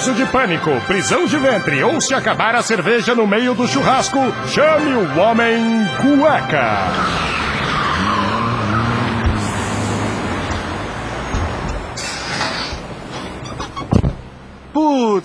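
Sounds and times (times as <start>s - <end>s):
speech: 0.0s - 7.5s
rumbling road noise: 0.0s - 15.2s
car skidding with long loud tire squeal: 6.0s - 14.0s
sharp pop of a car tire blowing out: 7.4s - 14.3s.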